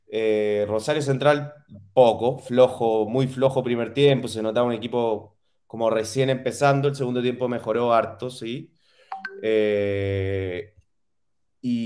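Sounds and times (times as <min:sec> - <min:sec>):
speech: 0:00.1 - 0:10.7, 0:11.6 - 0:11.8
WhatsApp phone message notification chime: 0:09.1 - 0:09.8.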